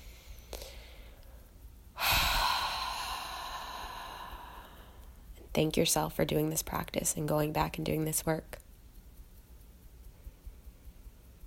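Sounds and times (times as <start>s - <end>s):
long deep breath released as a soft sigh: 2.0s - 5.1s
speech: 5.6s - 8.6s.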